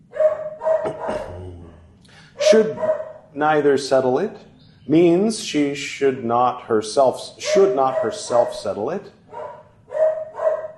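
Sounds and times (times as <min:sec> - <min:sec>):
dog barking: 0:00.1 - 0:01.4, 0:02.4 - 0:03.3, 0:07.4 - 0:08.7, 0:09.3 - 0:10.7
speech: 0:02.5 - 0:09.2.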